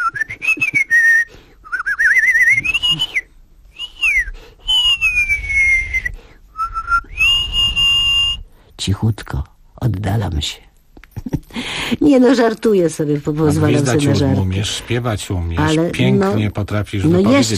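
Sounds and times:
person whistling a melody: 0.0s - 8.5s
speech: 8.8s - 10.7s, 11.9s - 17.5s.

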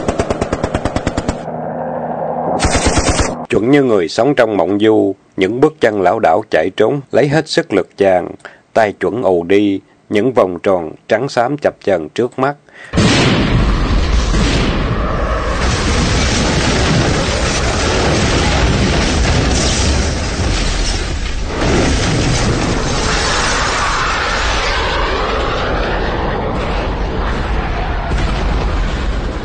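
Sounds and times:
two jet aircraft roaring over a valley: 1.1s - 3.5s, 22.8s - 29.4s
speech: 3.5s - 13.4s
bombs exploding below in a valley: 12.9s - 29.4s.

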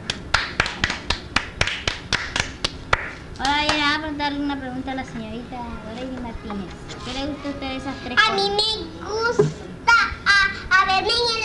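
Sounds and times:
hand clapping as applause for a little girl: 0.0s - 3.8s
speech: 3.4s - 9.9s, 10.9s - 11.4s.

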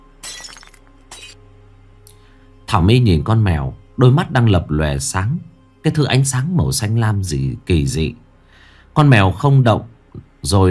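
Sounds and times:
glass cup slipping from a hand and shattering on the floor: 0.2s - 1.4s
tinkling shards of broken glass: 0.2s - 1.4s
speech: 2.7s - 8.2s, 9.0s - 10.6s.

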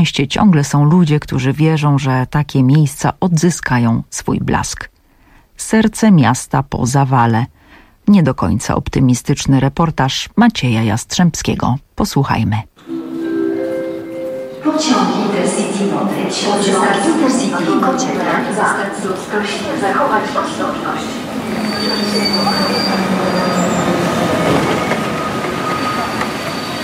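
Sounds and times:
speech: 0.0s - 4.9s, 5.6s - 12.7s, 14.6s - 15.4s, 16.3s - 23.4s
train rumbling and rattling at the Włocławek railway station: 14.6s - 26.8s
metallic train wheels squealing sharply over the rails: 21.4s - 26.8s.

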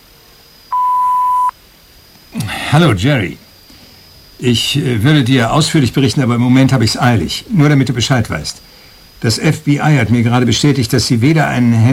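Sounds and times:
answering machine beep: 0.7s - 1.5s
speech: 2.7s - 3.4s, 4.4s - 11.9s.

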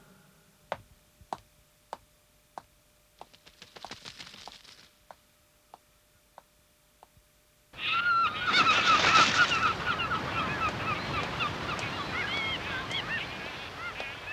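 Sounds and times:
dense flock of seagulls calling: 7.8s - 14.3s.

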